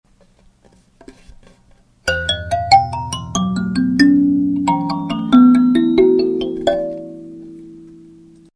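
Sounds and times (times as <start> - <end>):
kalimba note E: 2.1 - 8.4.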